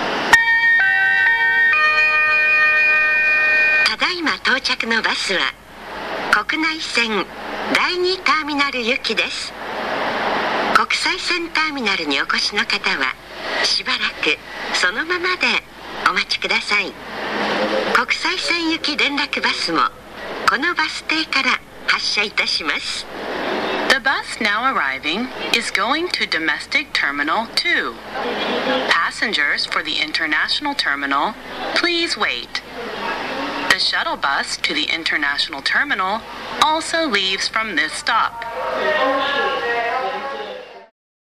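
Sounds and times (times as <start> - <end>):
automated announcement at airport inter-terminal free shuttle bus stop: 0.2 - 9.7, 10.6 - 40.9
airport-themed four-tone chime on bus arrival: 0.3 - 3.9.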